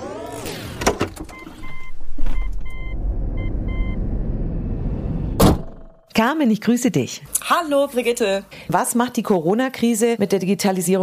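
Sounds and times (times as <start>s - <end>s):
electric car door and window clicks: 0.7s - 2.8s
brief louder whoosh: 2.6s - 5.9s
speech: 6.2s - 11.0s.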